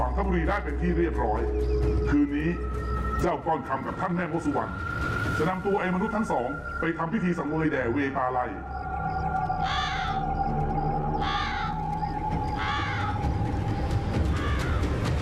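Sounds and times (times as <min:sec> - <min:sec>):
speech: 0:00.2 - 0:09.2
crow cawing: 0:08.7 - 0:15.1.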